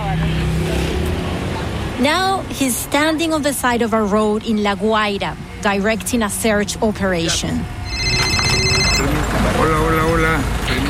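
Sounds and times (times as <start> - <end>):
busy outdoor noise: 0.0 - 10.8
speech: 2.0 - 7.8, 9.0 - 10.8
mobile phone high electronic ringtone: 7.8 - 9.2.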